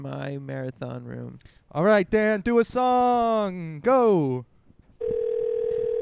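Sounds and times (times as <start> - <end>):
speech: 0.0 - 4.5
telephone dial tone: 5.0 - 6.0.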